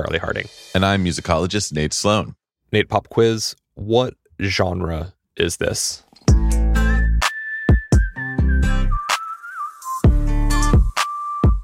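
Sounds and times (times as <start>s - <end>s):
speech: 0.0s - 6.0s
bass in a pop backing: 0.0s - 11.0s
clear sustained whistled melody in a pop song: 6.3s - 11.6s.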